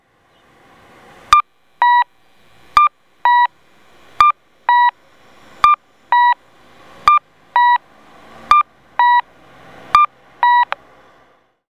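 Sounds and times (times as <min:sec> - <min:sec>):
Koito MP-I-2 audible traffic signal cuckoo tone at an Okayama crossing: 0:01.3 - 0:09.3, 0:09.9 - 0:10.8.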